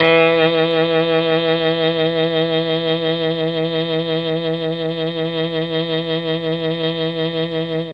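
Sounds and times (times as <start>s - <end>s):
mellotron saxophone: 0.0s - 7.9s.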